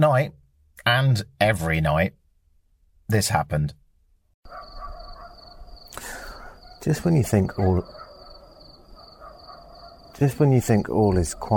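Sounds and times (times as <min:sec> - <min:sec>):
speech: 0:00.0 - 0:02.2, 0:03.1 - 0:03.8, 0:06.8 - 0:08.0, 0:10.2 - 0:11.5
dogs barking: 0:04.4 - 0:11.5
crickets chirping at night in Cape Verde: 0:04.5 - 0:11.5.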